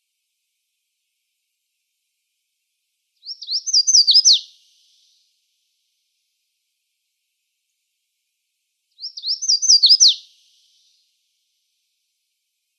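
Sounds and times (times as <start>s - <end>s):
red-faced warbler singing in Arizona: 3.2s - 4.5s, 9.0s - 10.2s.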